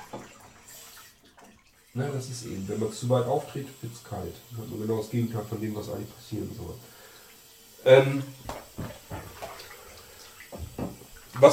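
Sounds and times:
water running from a tap: 0.0s - 11.5s
speech: 2.0s - 7.0s, 7.8s - 8.6s.

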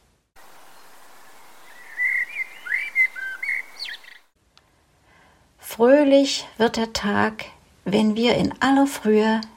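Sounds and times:
steady soft hiss: 0.0s - 9.5s
lone bird singing at dawn: 0.4s - 4.4s
speech: 5.8s - 9.5s.

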